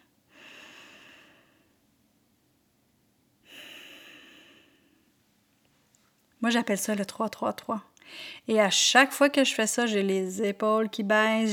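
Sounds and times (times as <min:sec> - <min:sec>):
slow deep breathing: 0:00.3 - 0:01.8, 0:03.4 - 0:05.2
speech: 0:06.4 - 0:11.5.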